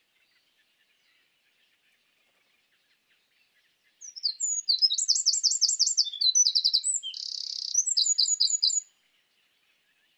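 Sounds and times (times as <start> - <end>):
Eurasian wren Troglodytes troglodytes singing: 4.0 - 8.9.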